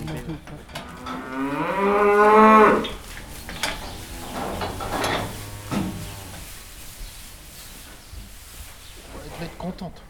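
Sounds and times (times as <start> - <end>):
cows mooing inside a barn: 0.7 - 6.6
shuffling in a barn: 2.9 - 10.0.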